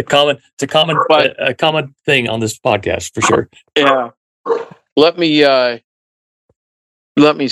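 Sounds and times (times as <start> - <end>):
speech: 0.0 - 5.9, 7.2 - 7.5
dog yelping and barking: 4.5 - 4.8.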